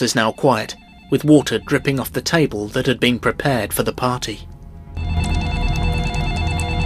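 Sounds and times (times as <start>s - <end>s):
telephone ringing tone after a number is dialled on a mobile phone: 0.0s - 2.2s, 5.0s - 6.8s
speech: 0.0s - 5.1s.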